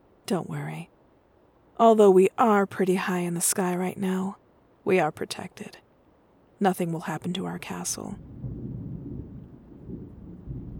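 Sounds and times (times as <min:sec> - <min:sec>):
speech: 0:00.3 - 0:00.9, 0:01.8 - 0:05.8, 0:06.6 - 0:08.4
thunder rolling through a storm: 0:07.8 - 0:10.7.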